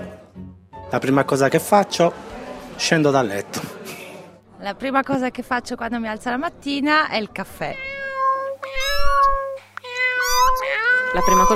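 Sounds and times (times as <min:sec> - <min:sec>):
speech: 0:00.9 - 0:03.8, 0:04.6 - 0:07.9, 0:11.1 - 0:11.5
cats meowing at a door wanting to be let out: 0:07.6 - 0:11.5.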